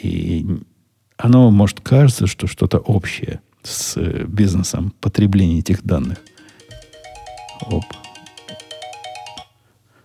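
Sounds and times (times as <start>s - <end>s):
speech: 0.4s - 6.3s, 7.6s - 8.0s
phone alarm ringtone with bright repeating electronic melody: 6.2s - 9.6s.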